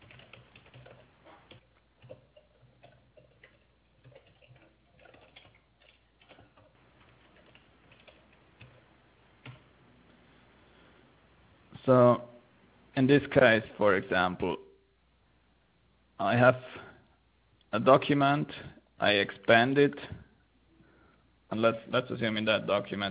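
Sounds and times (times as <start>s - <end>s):
typing on a computer keyboard: 0.0s - 8.8s, 9.4s - 9.6s
speech: 11.9s - 12.2s, 13.0s - 14.6s, 16.2s - 16.8s, 17.7s - 20.1s, 21.5s - 23.0s.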